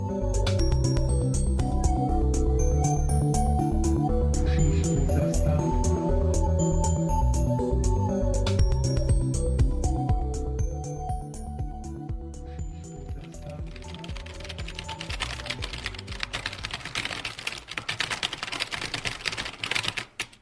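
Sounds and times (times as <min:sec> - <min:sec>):
music: 0:00.0 - 0:20.0
fingers typing on a computer keyboard: 0:13.2 - 0:20.4.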